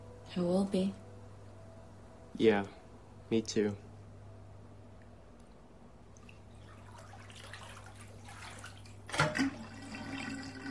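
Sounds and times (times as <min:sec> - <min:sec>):
speech: 0:00.4 - 0:01.0, 0:02.4 - 0:03.8
bath water draining after the drain plug is pulled: 0:06.1 - 0:10.6.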